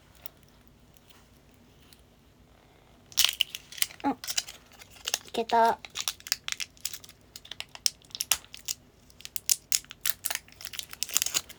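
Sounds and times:
packaging crinkling and tearing as a package is opened: 3.1 - 11.5
speech: 5.4 - 5.9.

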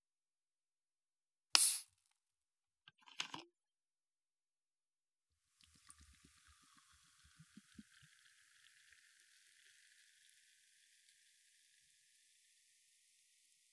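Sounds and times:
sharp snap: 1.6 - 1.8
fizzy drink poured into a wine glass: 5.6 - 12.6.

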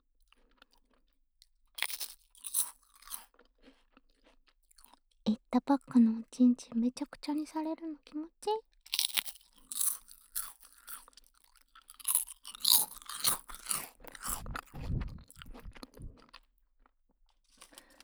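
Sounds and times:
crunching and chewing on a milk rice cracker: 0.3 - 5.0, 8.9 - 16.4, 17.4 - 18.0
speech: 5.3 - 8.8.

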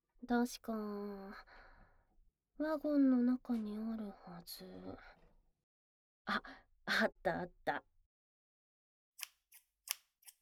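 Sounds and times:
speech: 0.3 - 1.6, 2.6 - 5.2, 6.3 - 7.9
scissors cutting through underwear fabric: 9.2 - 10.4.

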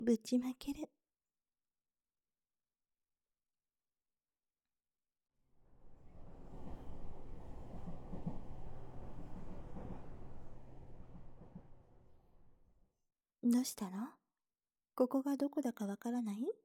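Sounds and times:
speech: 0.0 - 0.9, 13.4 - 14.2, 15.0 - 16.6
low rumbling roar inside a moving train: 5.6 - 12.8.

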